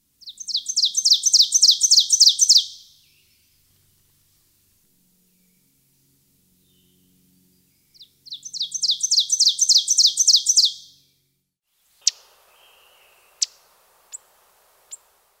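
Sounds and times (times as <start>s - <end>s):
ovenbird singing: 0.2s - 3.5s, 7.6s - 11.0s, 12.0s - 15.1s.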